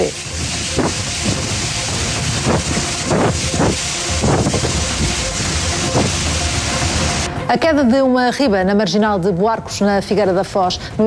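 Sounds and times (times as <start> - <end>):
rain: 0.0 - 7.4
storm wind buffeting the microphone: 0.0 - 7.8
speech: 7.5 - 11.0.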